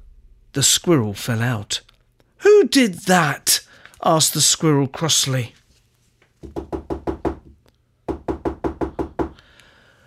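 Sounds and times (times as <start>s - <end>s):
speech: 0.6s - 5.6s
firm knocking on a door: 6.4s - 9.4s.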